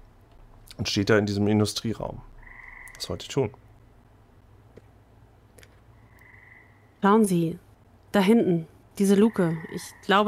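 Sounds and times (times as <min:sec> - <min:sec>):
low steady hum: 0:00.0 - 0:10.2
speech: 0:00.8 - 0:02.3, 0:03.0 - 0:03.6, 0:07.0 - 0:10.2
frog croaking: 0:02.2 - 0:03.8, 0:05.8 - 0:07.1, 0:09.0 - 0:10.2.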